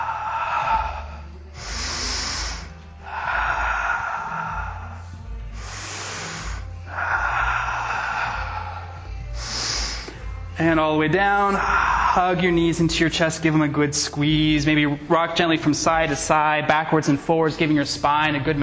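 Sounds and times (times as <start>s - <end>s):
deep slow breathing during a stretching exercise: 0.0s - 10.6s, 11.4s - 12.5s
speech: 10.6s - 18.6s.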